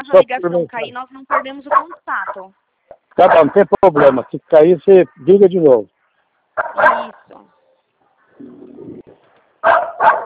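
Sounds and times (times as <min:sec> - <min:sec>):
speech: 0:00.1 - 0:02.6, 0:03.2 - 0:05.9, 0:06.6 - 0:07.5
jealous female dog barking at a gate: 0:01.3 - 0:02.4, 0:03.2 - 0:04.3, 0:06.6 - 0:07.3, 0:09.6 - 0:10.2.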